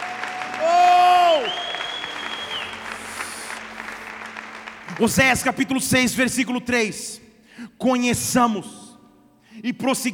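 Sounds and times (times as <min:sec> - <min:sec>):
audience applauding: 0:00.0 - 0:06.1
speech: 0:05.0 - 0:07.2, 0:07.8 - 0:08.8, 0:09.6 - 0:10.1.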